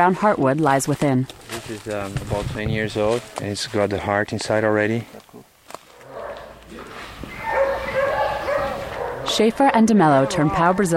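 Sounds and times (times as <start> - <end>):
speech: 0.0 - 5.2, 9.4 - 10.9
dogs barking and yipping: 6.0 - 10.9.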